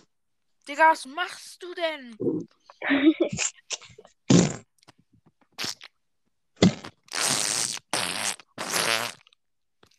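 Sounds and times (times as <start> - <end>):
speech: 0.7 - 3.6
fart-like raspberry noises blown into a microphone: 6.7 - 9.2.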